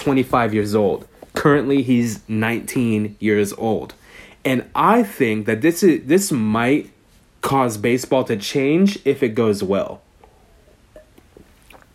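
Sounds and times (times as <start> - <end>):
speech: 0.0 - 10.0
small swallowing sounds: 10.3 - 11.9
person sipping water: 11.0 - 11.9.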